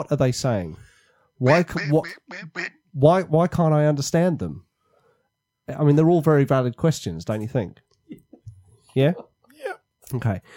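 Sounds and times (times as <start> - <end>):
speech: 0.0 - 4.7, 5.7 - 8.2, 9.0 - 9.3, 10.1 - 10.5
duck quacking: 1.5 - 2.8.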